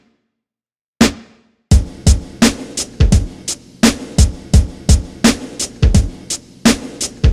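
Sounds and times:
snare drum hit with slight reverb: 1.0s - 6.1s
drum beat with snare and kick drum: 1.0s - 7.3s.

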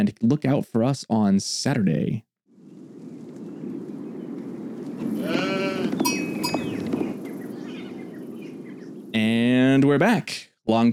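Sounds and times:
speech: 0.0s - 2.3s, 9.8s - 10.9s
steady outdoor noise: 1.9s - 10.9s
sheep bleating: 5.1s - 6.2s.

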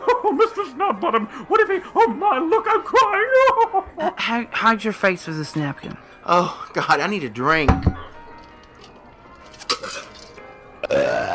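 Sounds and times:
laughter: 0.0s - 4.2s
speech: 0.7s - 8.0s
loud drawn-out burp with a rising croaking tone: 10.8s - 11.3s.

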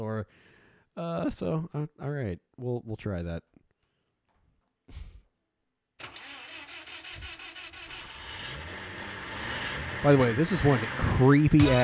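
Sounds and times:
speech: 0.1s - 3.6s, 4.9s - 5.1s, 10.0s - 11.8s
car engine cranking and revving: 6.0s - 11.8s.

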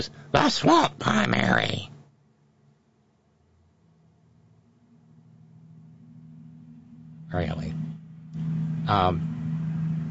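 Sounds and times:
speech: 0.0s - 1.9s, 7.3s - 7.8s, 8.9s - 9.3s
truck passing outside with low engine rumble: 6.9s - 10.0s.

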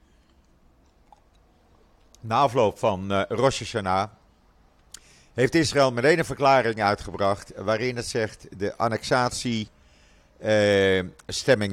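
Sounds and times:
someone sipping water: 0.2s - 2.2s
speech: 2.2s - 4.2s, 5.4s - 9.8s, 10.4s - 11.7s.

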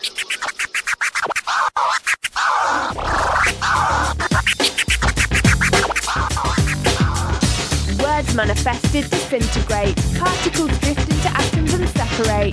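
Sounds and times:
DJ scratching a vinyl record on two turntables: 0.0s - 12.5s
thumping beat: 2.9s - 12.5s
speech: 8.4s - 12.5s.

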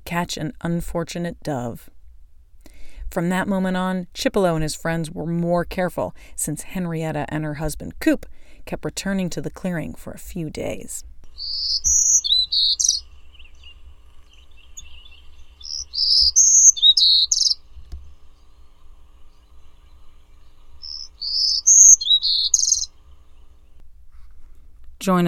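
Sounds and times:
speech: 0.1s - 2.0s, 3.1s - 11.1s, 25.0s - 25.2s
low rumbling hum: 11.0s - 24.7s
songbird singing bright warbling phrases: 11.3s - 23.8s.

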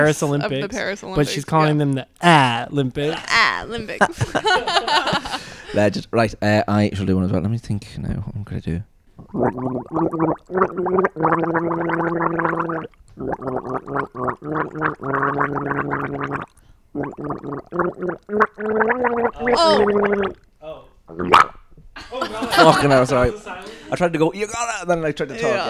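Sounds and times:
laughter: 0.0s - 1.8s, 2.4s - 6.2s, 22.0s - 25.6s
speech: 0.0s - 25.6s
person gargling to imitate drowning: 9.2s - 20.5s, 21.1s - 21.6s.

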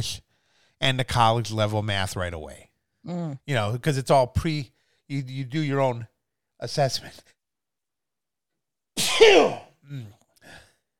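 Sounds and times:
speech: 0.0s - 0.2s, 0.8s - 7.4s, 9.2s - 10.6s
sneeze: 9.0s - 9.8s.

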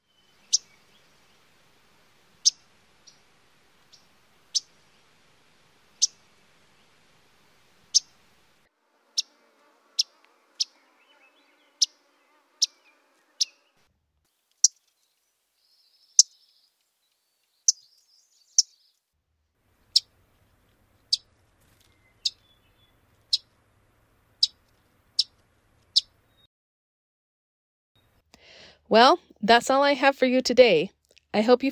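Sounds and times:
Audubon's Myrtle MacGillivray's and Wilson's warbler chip calls: 0.0s - 1.5s, 2.4s - 3.2s, 9.2s - 13.7s, 15.6s - 19.0s, 21.9s - 23.5s, 26.0s - 26.4s
speech: 28.9s - 31.6s.

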